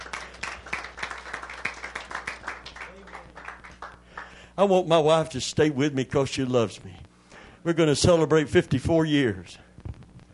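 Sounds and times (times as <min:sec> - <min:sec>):
single person clapping: 0:00.0 - 0:04.4
speech: 0:04.6 - 0:07.0, 0:07.6 - 0:09.7.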